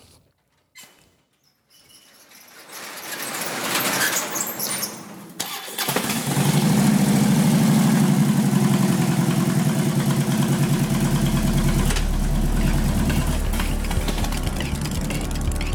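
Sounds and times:
engine cranking, firing up and idling with a deep throbbing rumble: 0:03.6 - 0:15.7.

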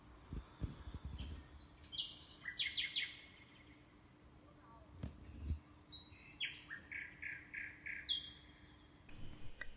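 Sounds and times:
common nightingale singing: 0:00.4 - 0:03.8, 0:05.9 - 0:09.7.

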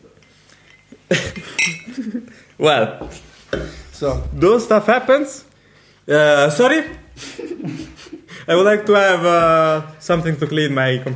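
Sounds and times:
laughter: 0:01.1 - 0:02.4, 0:07.2 - 0:08.4
speech: 0:01.1 - 0:03.3, 0:04.0 - 0:05.5, 0:06.1 - 0:07.8, 0:08.5 - 0:11.1
glasses clinking together in a toast: 0:01.5 - 0:02.0.

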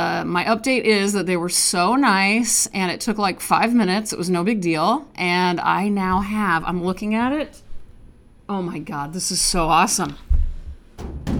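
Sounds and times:
speech: 0:00.2 - 0:07.6, 0:08.5 - 0:10.3
knocking on an empty metal flat file cabinet: 0:10.7 - 0:11.3.

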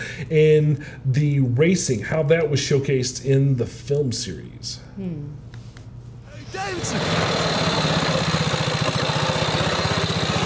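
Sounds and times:
speech: 0:00.2 - 0:05.4, 0:06.5 - 0:08.0
motorized bicycle's small engine running: 0:06.4 - 0:10.4.

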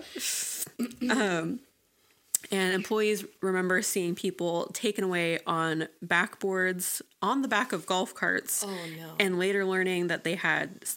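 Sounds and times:
voice imitating a spray bottle hiss: 0:00.0 - 0:00.9, 0:08.6 - 0:09.2
speech: 0:00.0 - 0:01.7, 0:02.5 - 0:10.9
drawn-out vocal sound: 0:08.6 - 0:09.3.

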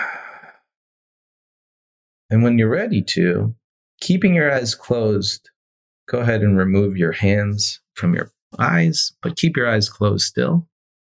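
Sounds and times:
deep breath during lying-down yoga relaxation: 0:00.0 - 0:00.7
speech: 0:02.3 - 0:05.5, 0:06.1 - 0:10.7.

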